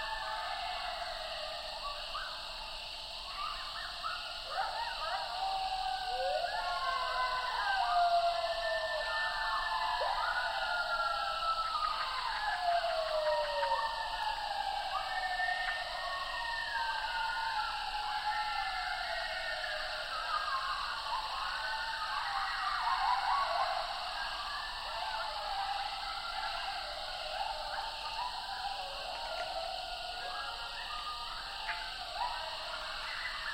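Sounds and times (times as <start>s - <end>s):
coyotes howling: 0.0s - 33.5s.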